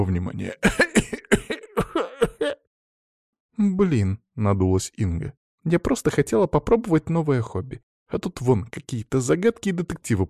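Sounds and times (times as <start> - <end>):
speech: 0.0 - 1.5, 3.6 - 10.2
man clearing his throat persistently: 0.5 - 2.6.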